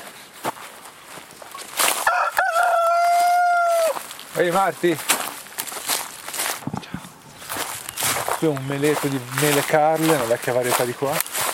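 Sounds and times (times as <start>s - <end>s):
faint outdoor noise: 0.0s - 11.5s
rooster crowing: 2.0s - 4.1s
speech: 4.4s - 5.1s, 8.4s - 11.3s.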